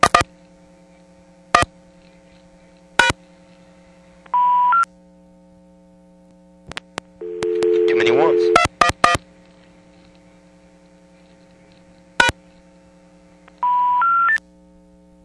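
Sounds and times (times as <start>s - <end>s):
low electrical hum: 0.0s - 15.2s
DTMF telephone tones reading back a phone number from an ANAC line: 7.2s - 8.7s, 13.6s - 14.4s
speech: 8.1s - 8.5s.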